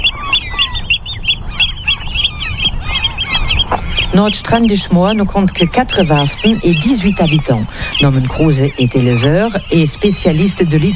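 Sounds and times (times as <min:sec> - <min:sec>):
low rumble of wind: 0:00.0 - 0:10.9
oystercatcher alarm calls near its nest on Nordstrandischmoor Hallig island: 0:00.0 - 0:10.9
speech: 0:04.2 - 0:10.9.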